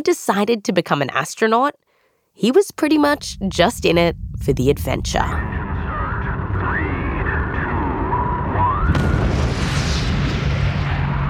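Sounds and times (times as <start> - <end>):
speech: 0.0 - 1.8, 2.4 - 5.6
rocket launch as its solid rocket motors ignite: 3.2 - 11.2.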